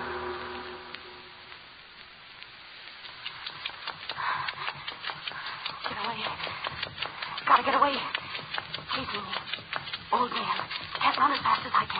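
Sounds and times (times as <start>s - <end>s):
hand saw cutting through a skull: 3.2s - 11.9s.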